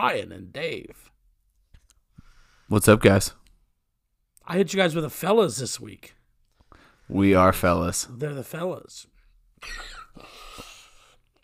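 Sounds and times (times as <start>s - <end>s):
speech: 0.0s - 1.1s, 2.7s - 3.4s, 4.5s - 6.2s, 7.1s - 10.7s
harsh breathy coughs: 9.6s - 10.9s.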